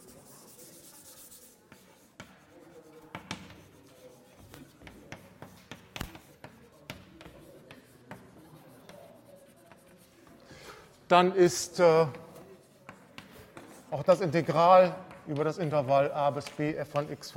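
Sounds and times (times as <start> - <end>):
handwriting a mathematical inequality during a maths lecture: 0.0 - 11.0, 12.3 - 14.4
sharp taps while handwriting a formula: 0.1 - 10.4, 12.1 - 15.7
speech: 11.1 - 12.2, 14.0 - 17.3.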